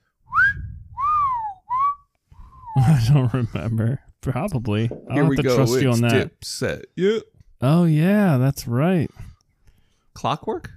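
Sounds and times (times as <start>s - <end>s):
person whistling a song melody: 0.3s - 2.8s
speech: 2.8s - 9.3s, 10.2s - 10.7s.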